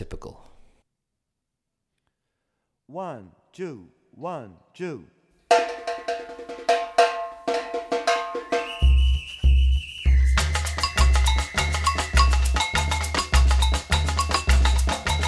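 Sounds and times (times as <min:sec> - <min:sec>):
batucada Brazilian rhythm on a drumset: 0:05.5 - 0:15.2.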